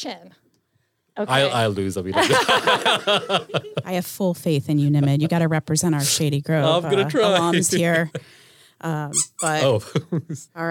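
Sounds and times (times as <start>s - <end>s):
speech: 0.0s - 0.5s, 1.2s - 10.7s
laughter: 1.3s - 4.0s, 6.7s - 8.4s, 9.2s - 10.5s
squeeze toy squeak ending in a hiss of air: 9.1s - 9.7s.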